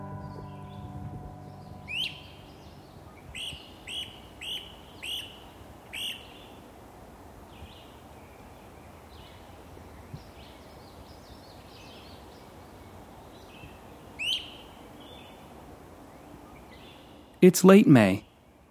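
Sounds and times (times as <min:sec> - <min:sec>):
steady outdoor noise: 0:00.0 - 0:18.6
great crested flycatcher giving rising whistled wheep calls at Florida Lake Park: 0:01.5 - 0:05.4, 0:06.0 - 0:06.3, 0:14.2 - 0:14.7
speech: 0:17.4 - 0:18.3.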